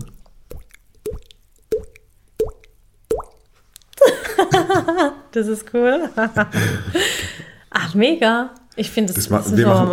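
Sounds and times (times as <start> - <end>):
voice imitating a dripping water tap with mouth plops: 0.0 - 3.5
laughter: 4.0 - 5.2
speech: 4.6 - 7.2, 7.9 - 9.9.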